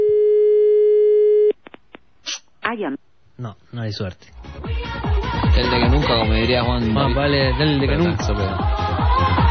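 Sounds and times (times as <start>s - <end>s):
telephone busy signal while calling a number in Telde: 0.0s - 1.5s
speech: 2.7s - 9.4s.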